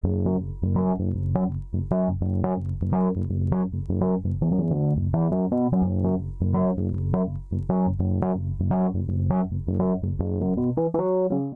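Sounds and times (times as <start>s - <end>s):
MIDI bassline in D minor: 0.0s - 11.5s.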